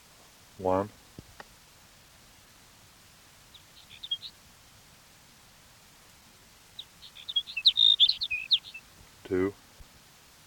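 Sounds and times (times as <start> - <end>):
speech: 0.6 - 1.0
sage sparrow song: 3.4 - 4.7, 6.4 - 9.6.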